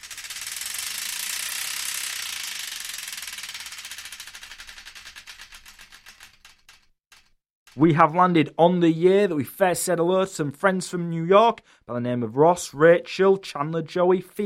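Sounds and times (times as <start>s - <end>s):
spinning prize wheel ratchet clicking: 0.0s - 8.0s
speech: 7.8s - 14.4s.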